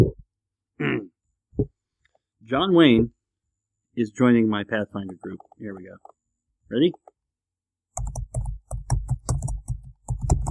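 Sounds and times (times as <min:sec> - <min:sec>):
speech: 0:02.5 - 0:03.2, 0:04.0 - 0:07.0
typing on a computer keyboard: 0:04.9 - 0:07.2, 0:07.9 - 0:10.4.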